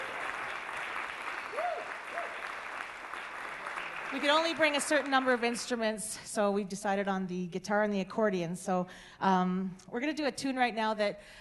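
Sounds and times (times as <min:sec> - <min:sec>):
audience applause: 0:00.0 - 0:05.7
crowd whooping or whistling: 0:01.4 - 0:02.5
speech: 0:04.1 - 0:11.3.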